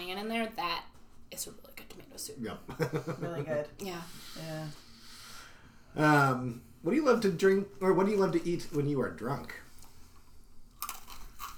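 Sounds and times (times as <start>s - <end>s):
speech: 0.1s - 4.9s, 5.9s - 9.6s
laughter: 2.7s - 3.6s
person chewing a crunchy salty snack: 10.7s - 11.5s.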